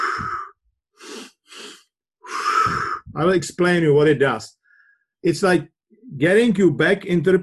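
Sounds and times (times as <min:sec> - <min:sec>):
long breathy exhale through the mouth: 0:00.0 - 0:03.1
quick nasal inhales in a breathing exercise: 0:00.0 - 0:03.2
speech: 0:03.1 - 0:04.6, 0:05.2 - 0:07.4.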